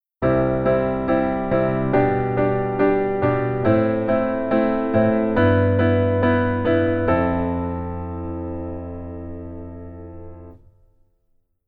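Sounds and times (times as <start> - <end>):
basic keyboard rhythm: 0.2 - 10.6.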